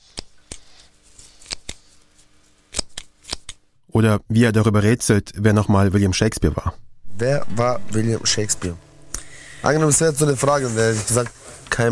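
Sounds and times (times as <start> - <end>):
nail scissors cutting chest hair: 1.4 - 1.9, 2.7 - 3.6
speech: 3.9 - 8.9, 9.6 - 11.9.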